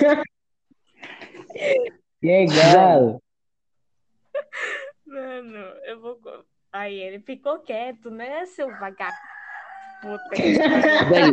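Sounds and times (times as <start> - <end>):
speech: 0.0 - 0.3, 1.6 - 3.2, 6.8 - 9.4, 10.0 - 11.3
rooster crowing: 8.6 - 10.5
laughter: 10.0 - 11.3.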